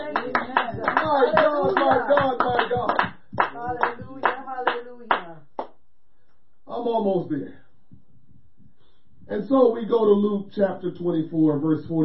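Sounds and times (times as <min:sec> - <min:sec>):
congregation singing: 0:00.0 - 0:04.6
congregation clapping hands: 0:00.0 - 0:05.8
speech: 0:01.1 - 0:03.1, 0:06.9 - 0:07.6, 0:09.3 - 0:12.0.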